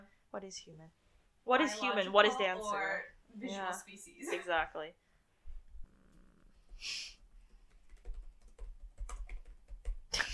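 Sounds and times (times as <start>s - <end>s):
speech: 0.3s - 5.0s, 6.8s - 7.1s
hisses: 6.8s - 7.2s
rapid forceful typing on a computer keyboard: 7.6s - 10.3s.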